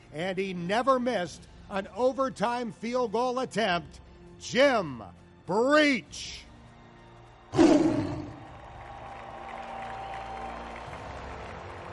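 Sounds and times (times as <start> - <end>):
speech: 0.1 - 6.5
big stadium crowd roaring and cheering: 6.6 - 11.9.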